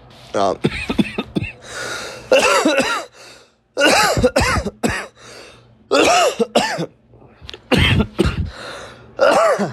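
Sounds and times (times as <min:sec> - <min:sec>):
person coughing after smoking a bowl: 0:00.6 - 0:01.6, 0:02.3 - 0:03.1, 0:03.8 - 0:05.2, 0:05.9 - 0:06.9, 0:07.7 - 0:08.6, 0:09.2 - 0:09.7.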